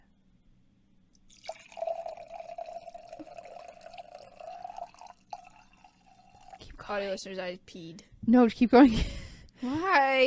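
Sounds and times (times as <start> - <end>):
white wine poured into a glass: 1.3 - 6.7
speech: 6.9 - 10.2.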